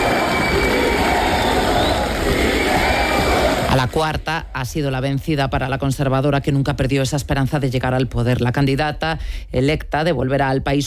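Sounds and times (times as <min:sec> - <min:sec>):
large crowd cheering at ceremony: 0:00.0 - 0:04.2
crowd applause at ceremony: 0:00.0 - 0:04.3
speech: 0:03.8 - 0:10.8.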